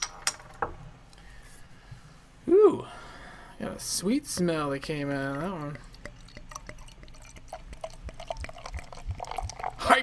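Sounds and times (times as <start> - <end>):
speech: 3.8 - 5.9
golden hazy beer pouring into a glass: 5.3 - 10.0.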